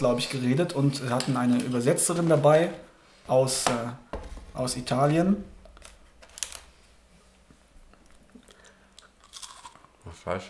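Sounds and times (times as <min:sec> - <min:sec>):
speech: 0:00.0 - 0:04.0, 0:04.6 - 0:05.5, 0:10.2 - 0:10.4
crunching on a cookie roll: 0:08.3 - 0:09.9.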